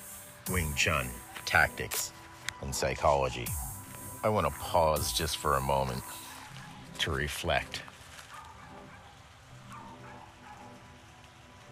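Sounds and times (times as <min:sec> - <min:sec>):
steady rain-like background hiss: 0:00.0 - 0:11.7
speech: 0:00.5 - 0:06.2, 0:07.0 - 0:07.9
small dog yapping: 0:08.3 - 0:10.8.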